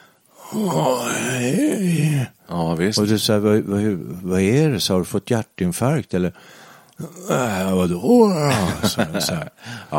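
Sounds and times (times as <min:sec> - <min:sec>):
person imitating a pained groan: 0:00.3 - 0:02.3, 0:07.0 - 0:09.1
speech: 0:00.5 - 0:09.9
laughter: 0:08.4 - 0:09.6.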